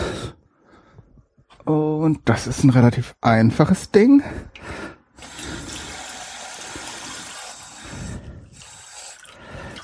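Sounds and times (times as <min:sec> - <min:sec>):
speech: 0:01.7 - 0:05.0
water running from a tap into a small pot: 0:05.2 - 0:08.0, 0:08.6 - 0:09.8.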